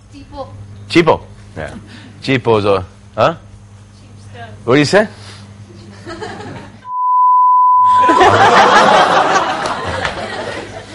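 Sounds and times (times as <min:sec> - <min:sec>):
speech: 0:00.1 - 0:03.5, 0:04.4 - 0:05.2
censor bleep replacing a spoken word: 0:06.9 - 0:08.4
audience laughing and chattering: 0:08.0 - 0:10.9.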